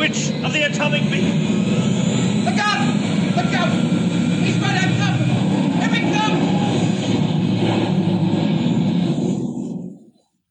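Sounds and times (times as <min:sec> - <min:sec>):
speech: 0:00.0 - 0:01.9
planes crashing: 0:00.0 - 0:10.1
airplane engine roar: 0:00.0 - 0:10.2.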